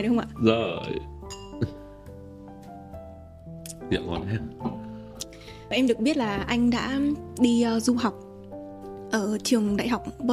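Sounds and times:
speech: 0:00.0 - 0:01.8, 0:03.9 - 0:04.8, 0:05.7 - 0:08.2, 0:09.1 - 0:10.3
glasses clinking together in a toast: 0:01.2 - 0:01.9.

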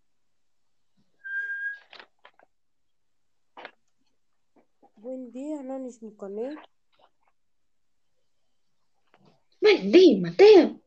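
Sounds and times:
person whistling one steady clear note: 0:01.2 - 0:01.9
speech: 0:05.1 - 0:06.8, 0:09.8 - 0:10.8.

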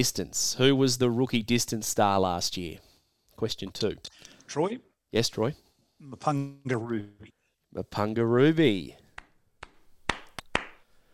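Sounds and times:
speech: 0:00.0 - 0:09.0
sharp hand claps stinger sound effect: 0:09.1 - 0:10.9.

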